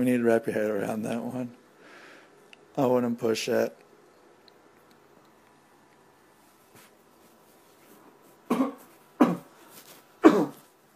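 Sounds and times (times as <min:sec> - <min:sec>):
speech: 0:00.0 - 0:01.6, 0:02.8 - 0:03.8
person coughing: 0:08.5 - 0:09.6, 0:10.2 - 0:10.7.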